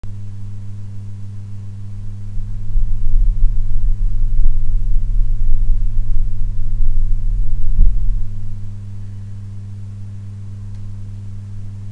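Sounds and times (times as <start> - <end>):
hum on condenser microphone recording through USB mixer: 0.0 - 11.9
microphone being touched: 2.0 - 8.8.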